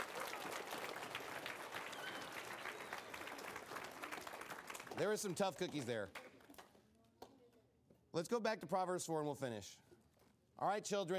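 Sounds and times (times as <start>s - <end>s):
audience applause: 0.0s - 6.3s
speech: 5.0s - 6.2s, 8.2s - 9.9s, 10.6s - 11.1s.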